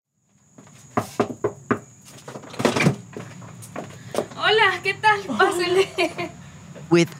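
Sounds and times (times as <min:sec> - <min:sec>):
front door rattling as it swings: 0:02.2 - 0:04.6
speech: 0:04.8 - 0:06.3, 0:06.9 - 0:07.1.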